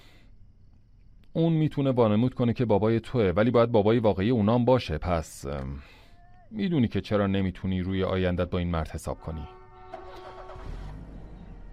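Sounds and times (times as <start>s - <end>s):
speech: 1.4s - 9.6s
car engine starting and rumbling in traffic: 9.8s - 11.7s.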